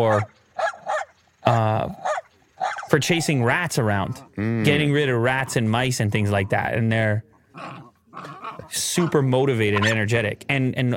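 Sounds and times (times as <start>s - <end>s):
speech: 0.0s - 0.4s, 1.5s - 2.0s, 2.9s - 10.9s
small Jack Russell terrier barking: 0.0s - 1.1s, 2.0s - 2.9s.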